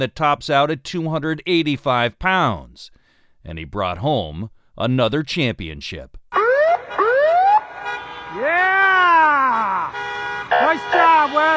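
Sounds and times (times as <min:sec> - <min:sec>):
speech: 0:00.0 - 0:06.2, 0:10.6 - 0:11.5
fire truck siren wailing in a coastal Alaskan town: 0:06.3 - 0:11.5.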